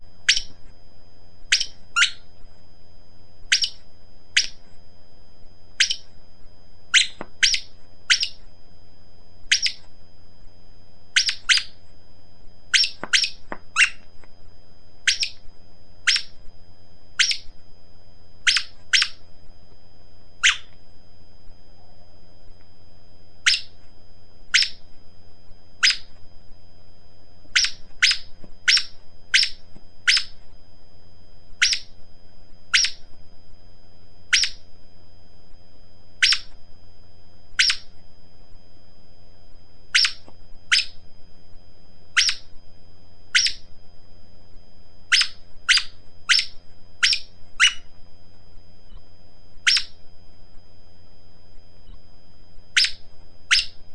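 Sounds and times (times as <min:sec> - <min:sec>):
rodent squeaking: 0:00.2 - 0:00.6, 0:01.5 - 0:02.3, 0:03.5 - 0:04.6, 0:05.8 - 0:06.1, 0:06.9 - 0:08.5, 0:09.5 - 0:09.9, 0:11.1 - 0:11.8, 0:12.7 - 0:14.1, 0:15.0 - 0:16.4, 0:17.2 - 0:17.6, 0:18.4 - 0:19.3, 0:20.4 - 0:20.8, 0:23.4 - 0:23.8, 0:24.5 - 0:24.8, 0:25.8 - 0:26.2, 0:27.5 - 0:30.4, 0:31.6 - 0:32.0, 0:32.7 - 0:33.1, 0:34.3 - 0:34.6, 0:36.2 - 0:36.6, 0:37.6 - 0:38.0, 0:39.9 - 0:41.0, 0:42.2 - 0:42.5, 0:43.3 - 0:43.7, 0:45.1 - 0:47.9, 0:49.6 - 0:50.0, 0:52.7 - 0:53.8.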